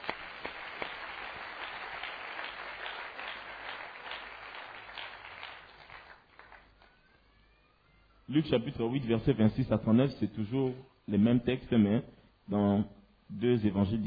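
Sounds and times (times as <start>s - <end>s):
church congregation clapping during a worship service: 0.0s - 7.1s
speech: 8.3s - 14.0s.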